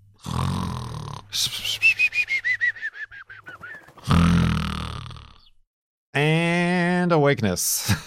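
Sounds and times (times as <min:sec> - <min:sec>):
person imitating snoring: 0:00.2 - 0:01.5, 0:04.0 - 0:05.6
speech: 0:01.3 - 0:02.0, 0:06.2 - 0:06.4, 0:07.0 - 0:08.0.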